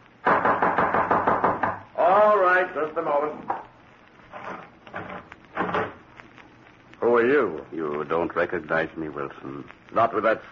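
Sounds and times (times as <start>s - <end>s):
loud rapid knocking on a door: 0.2s - 1.9s
speech: 2.7s - 3.5s, 7.2s - 10.5s.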